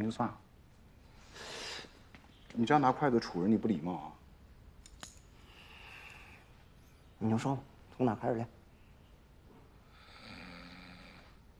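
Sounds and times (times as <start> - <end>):
speech: 0.0 - 0.4, 2.5 - 4.2, 7.2 - 8.6
person snoring: 9.9 - 11.4.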